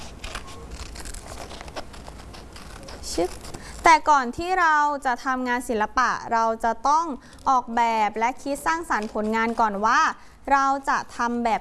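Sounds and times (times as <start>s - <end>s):
paper rustling and crinkling: 0.0s - 4.0s
scissors cutting out a paper picture: 0.0s - 4.6s, 8.5s - 10.0s
speech: 3.2s - 11.6s.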